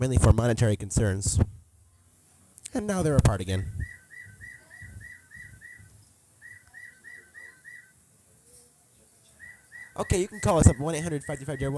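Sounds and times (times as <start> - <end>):
speech: 0.0 - 1.6, 2.7 - 3.9, 10.0 - 11.7
bird chirping: 3.5 - 8.0, 9.2 - 11.7.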